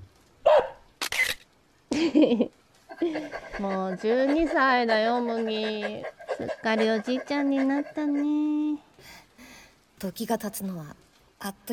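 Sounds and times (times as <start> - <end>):
camera shutter click photographing a dog at a birthday celebration: 1.0 - 1.5
speech: 2.0 - 9.2, 10.0 - 11.7.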